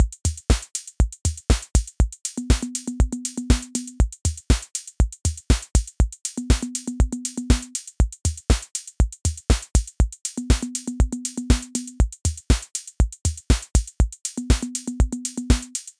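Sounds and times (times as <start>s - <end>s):
analogue drum machine beat: 0.0s - 15.9s.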